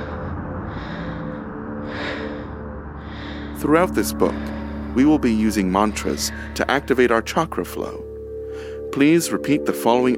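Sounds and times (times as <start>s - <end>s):
slow breathing in and out: 0.0s - 7.2s, 8.0s - 8.9s
dense steady droning music bed: 0.0s - 10.1s
speech: 3.6s - 10.1s.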